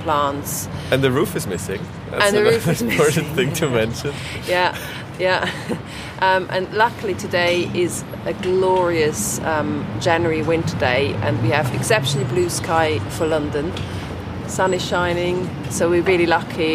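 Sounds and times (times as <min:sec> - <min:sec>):
low rumble of busy city road traffic in London: 0:00.0 - 0:16.7
speech: 0:00.0 - 0:16.7
woman laughing outdoors at a roofless church ruin in London: 0:02.3 - 0:03.5, 0:04.5 - 0:05.9.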